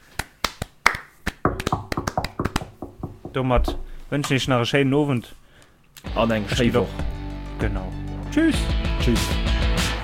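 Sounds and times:
small group of people clapping by hand: 0:00.0 - 0:03.0
speech: 0:03.4 - 0:05.4, 0:06.1 - 0:07.0, 0:07.6 - 0:09.6.

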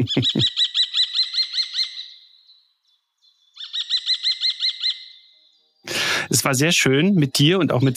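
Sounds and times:
speech: 0:00.0 - 0:00.7, 0:06.3 - 0:07.9
kestrel calling: 0:00.0 - 0:05.7.

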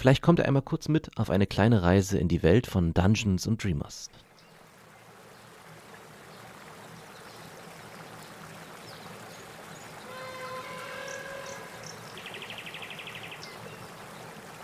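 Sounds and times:
speech: 0:00.0 - 0:04.2
river water rushing during a boat journey: 0:04.3 - 0:14.6
brief rising tonal call: 0:10.0 - 0:13.5.

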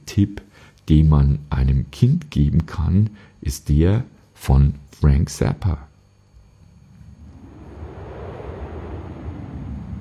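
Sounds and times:
speech: 0:00.2 - 0:05.9
wind buffeting microphone: 0:06.7 - 0:09.9.

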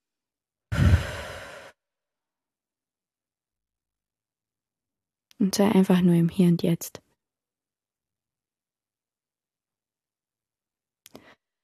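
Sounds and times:
deep breath drawn into the belly: 0:00.7 - 0:01.8
speech: 0:05.4 - 0:07.0.

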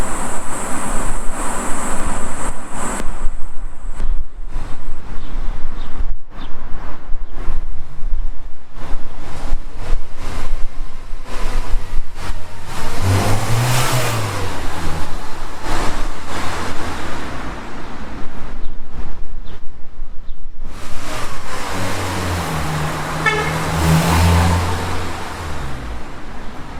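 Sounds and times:
road traffic: 0:00.0 - 0:26.7
car driving past: 0:12.2 - 0:15.6, 0:20.7 - 0:26.7.

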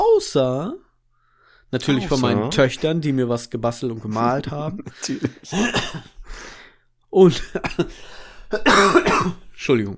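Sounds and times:
speech: 0:00.2 - 0:00.8, 0:01.7 - 0:09.9
laughter: 0:04.0 - 0:06.0
person coughing: 0:04.9 - 0:06.2, 0:08.5 - 0:09.5.

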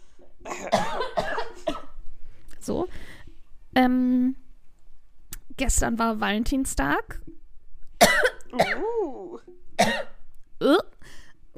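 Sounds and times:
speech: 0:00.2 - 0:01.1, 0:03.8 - 0:04.4, 0:05.6 - 0:07.4
person coughing harshly: 0:00.4 - 0:01.9, 0:08.0 - 0:09.0, 0:09.8 - 0:10.2.

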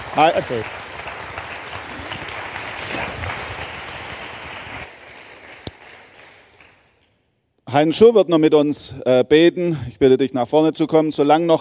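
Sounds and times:
crowd applause: 0:00.0 - 0:06.9
speech: 0:00.2 - 0:00.8, 0:07.7 - 0:11.6.

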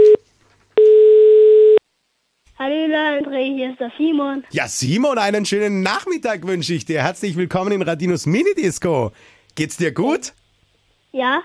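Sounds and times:
telephone ringback tone while a call is placed: 0:00.0 - 0:00.2, 0:00.8 - 0:01.8
speech: 0:02.9 - 0:10.4, 0:11.1 - 0:11.4.

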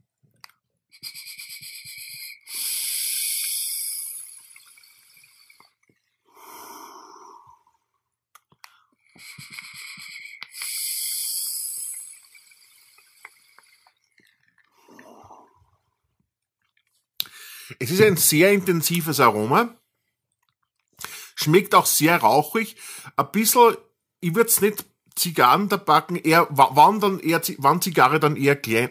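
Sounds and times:
exhaling vapour from an e-cigarette running liquid at 40 watts: 0:00.9 - 0:07.9, 0:08.6 - 0:15.8
speech: 0:17.8 - 0:19.8, 0:21.4 - 0:28.8.

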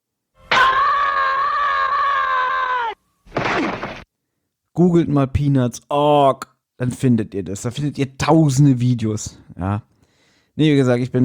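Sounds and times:
looped cartoon character's frustrated scream: 0:00.5 - 0:03.0
speech: 0:04.8 - 0:09.9, 0:10.6 - 0:11.2.

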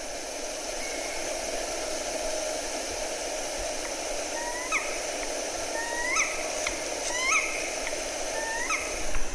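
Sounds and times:
background hiss: 0:00.0 - 0:09.3
black woodpecker calls played from a recording: 0:04.4 - 0:05.0, 0:05.7 - 0:09.1.

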